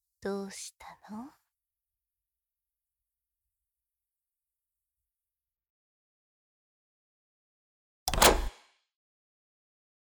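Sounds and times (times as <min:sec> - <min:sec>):
speech: 0:00.2 - 0:01.4
heavy door slamming shut: 0:08.1 - 0:08.6.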